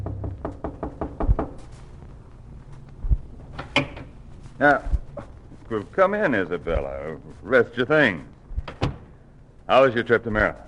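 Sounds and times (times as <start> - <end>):
sharp knocking on a door: 0.0 - 1.6
speech: 4.6 - 4.9, 5.7 - 8.3, 9.7 - 10.6.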